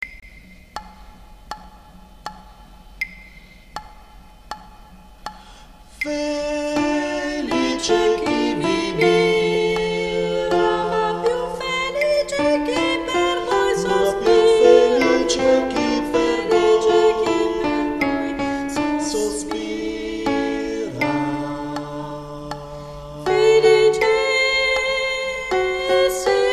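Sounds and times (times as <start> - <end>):
contralto voices in choir: 6.0 - 26.5.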